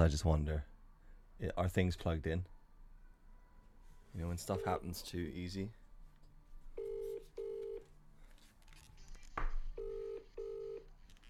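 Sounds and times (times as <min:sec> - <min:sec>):
speech: 0:00.0 - 0:00.7, 0:01.4 - 0:02.5, 0:04.1 - 0:05.8
phone ringtone of short buzzy tones: 0:04.5 - 0:05.0, 0:06.8 - 0:07.9, 0:09.8 - 0:10.9.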